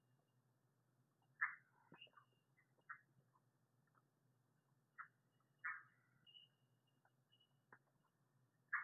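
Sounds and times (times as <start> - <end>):
quiet ticks: 1.0 - 8.8
red-eyed tree frog Agalychnis callidryas clucking: 1.4 - 1.7.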